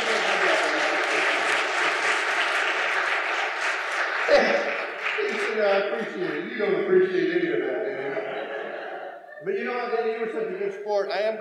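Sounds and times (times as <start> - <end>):
laughter: 0.0 - 3.4, 4.0 - 10.9
sizable audience applause: 0.0 - 6.9
speech: 5.8 - 7.9, 9.4 - 11.4.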